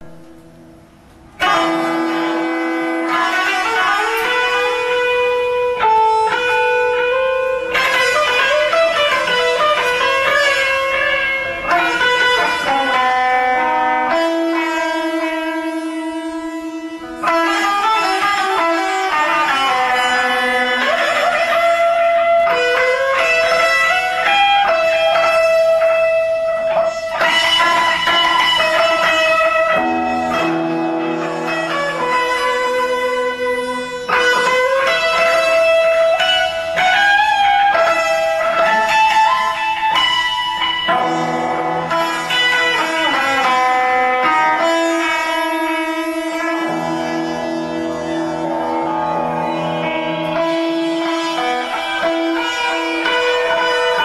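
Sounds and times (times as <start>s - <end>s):
24 equal temperament guitar: 0.0s - 54.0s.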